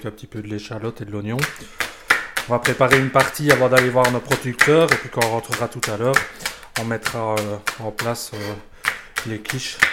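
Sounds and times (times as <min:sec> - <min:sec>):
speech: 0:00.0 - 0:09.9
knife chopping leeks on a cutting board: 0:02.4 - 0:09.9.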